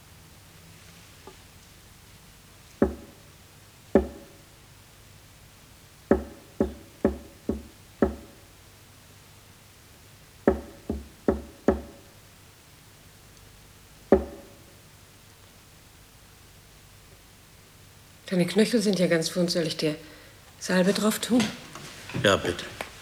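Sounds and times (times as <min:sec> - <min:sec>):
knocking signals tapped on a prison cell wall: 0:02.8 - 0:03.3, 0:03.9 - 0:04.5, 0:06.1 - 0:08.5, 0:10.4 - 0:12.2, 0:14.1 - 0:14.8
speech: 0:18.3 - 0:21.6, 0:22.2 - 0:22.8.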